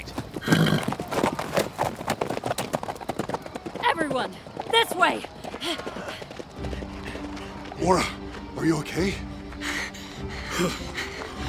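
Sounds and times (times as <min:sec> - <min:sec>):
horse hooves clip-clopping on hard ground: 0:00.0 - 0:08.5
speech: 0:04.2 - 0:06.1, 0:07.8 - 0:09.3, 0:10.6 - 0:10.9.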